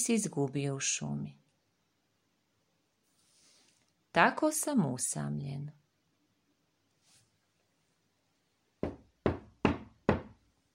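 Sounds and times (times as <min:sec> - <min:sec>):
speech: 0:00.0 - 0:01.4, 0:04.2 - 0:05.8
knocking on a door: 0:08.8 - 0:10.4.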